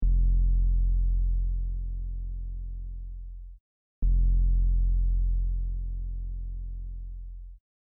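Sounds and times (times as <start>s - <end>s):
synth bass: 0.0s - 7.6s.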